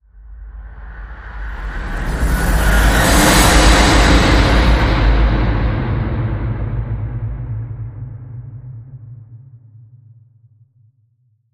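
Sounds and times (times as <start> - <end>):
whoosh and glide: 0.7 - 7.3.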